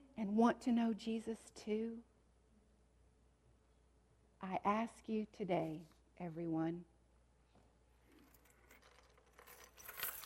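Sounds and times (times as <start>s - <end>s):
speech: 0.2s - 2.1s, 4.4s - 6.9s
keys being shaken: 8.1s - 10.2s.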